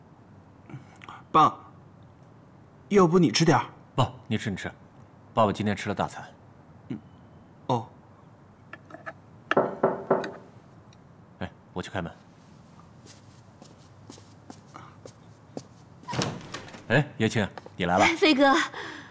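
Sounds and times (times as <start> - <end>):
speech: 1.3 - 1.6, 2.9 - 4.8, 5.4 - 7.1, 7.7 - 7.9, 11.8 - 12.2, 16.9 - 18.8
indoor thumps: 9.5 - 10.4, 16.1 - 17.0
sharp knocks on a door: 9.5 - 10.4
shuffling noises: 12.3 - 16.9.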